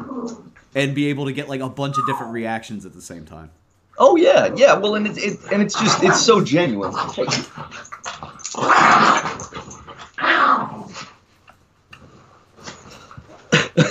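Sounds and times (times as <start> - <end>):
speech: 0.2 - 9.7
dogs snarling and growling in a scuffle: 5.8 - 11.2.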